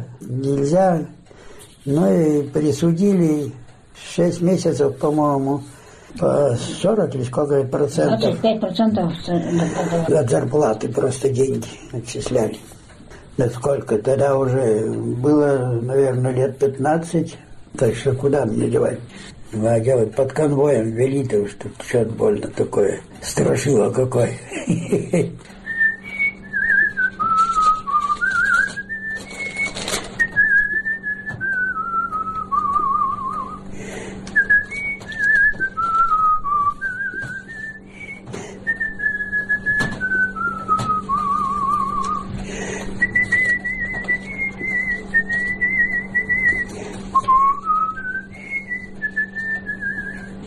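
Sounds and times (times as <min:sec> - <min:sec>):
speech: 0:00.3 - 0:01.2, 0:01.8 - 0:12.8, 0:13.4 - 0:25.6
laughter: 0:09.2 - 0:10.5, 0:24.4 - 0:25.5
steady low hum: 0:24.5 - 0:50.4
man whistling a wandering melody: 0:25.6 - 0:33.7, 0:34.4 - 0:42.3, 0:43.0 - 0:50.4.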